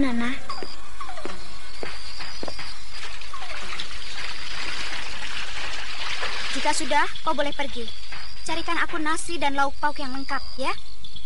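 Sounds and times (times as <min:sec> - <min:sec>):
speech: 0:00.0 - 0:00.5, 0:06.6 - 0:10.9
warm water poured into a bathroom water container: 0:02.9 - 0:07.2.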